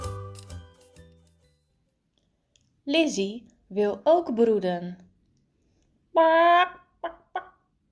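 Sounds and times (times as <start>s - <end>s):
speech: 2.9s - 5.0s, 6.1s - 7.2s
chicken clucking: 7.0s - 7.6s.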